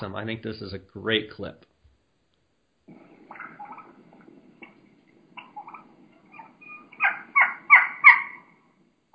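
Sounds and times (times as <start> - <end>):
speech: 0.0 - 1.7
young wild turkey hen high-pitched keeking: 3.3 - 4.0, 5.4 - 8.6.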